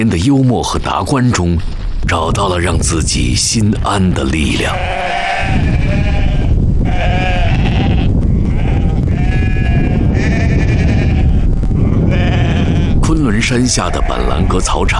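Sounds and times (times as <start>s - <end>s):
speech: 0.0s - 6.1s, 13.4s - 14.9s
flock of sheep bleating on a high mountain pasture: 4.5s - 14.9s.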